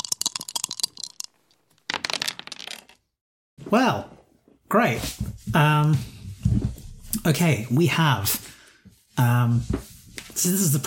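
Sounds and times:
dice clattering across a hard surface: 0.0s - 3.0s
speech: 3.7s - 6.2s, 7.2s - 8.5s, 9.2s - 10.8s.

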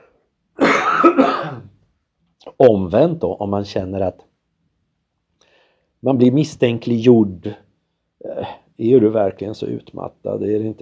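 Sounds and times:
rough throaty cough: 0.6s - 1.8s
speech: 2.4s - 4.3s, 6.0s - 7.6s, 8.3s - 10.8s.

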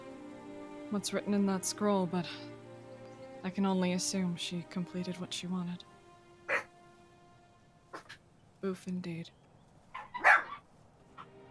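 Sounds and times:
speech: 0.9s - 2.5s, 3.4s - 5.9s, 8.6s - 9.4s
dog barking: 6.5s - 6.7s, 9.9s - 10.6s.

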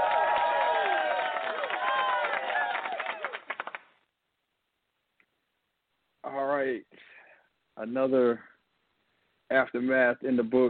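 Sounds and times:
crowd cheering and whooping: 0.0s - 3.4s
loud dense applause: 0.0s - 4.1s
speech: 7.8s - 8.5s, 9.5s - 10.6s.

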